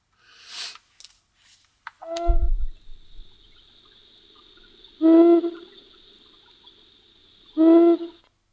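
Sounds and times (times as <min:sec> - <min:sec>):
eagle owl deep low courtship hoot: 0:02.0 - 0:08.3
faint steady high whine: 0:02.0 - 0:08.3.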